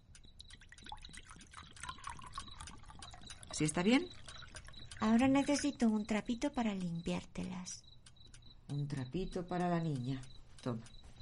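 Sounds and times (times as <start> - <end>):
small bubbly water drips and trickles: 0.0 - 7.1
water poured in a kitchen to wash a girl's hands: 0.4 - 5.0
speech: 3.6 - 4.2, 5.0 - 7.9, 8.7 - 11.0.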